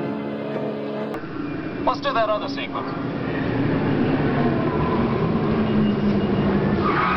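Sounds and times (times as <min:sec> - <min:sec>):
heavy road noise: 0:00.0 - 0:07.1
speech: 0:01.8 - 0:03.2
car without ABS braking hard and skidding, tires screeching: 0:02.8 - 0:07.1.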